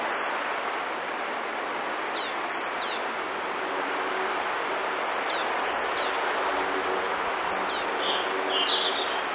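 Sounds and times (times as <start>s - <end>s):
Eurasian blue tit Cyanistes caeruleus calls: 0.0s - 0.4s, 1.9s - 3.1s, 5.0s - 9.2s
background hiss: 0.0s - 9.3s.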